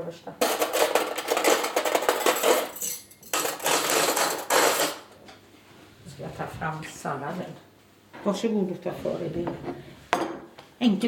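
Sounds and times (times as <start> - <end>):
speech: 0.1 - 0.6, 6.3 - 9.9, 10.8 - 11.0
metallic cutlery clinking and rattling as it is put into serving dishes: 0.4 - 5.1.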